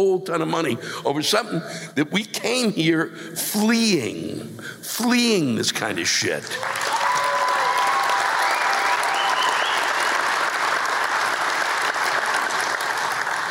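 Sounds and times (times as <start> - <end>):
speech: 0.0 - 7.0
live audience applause: 6.5 - 13.4.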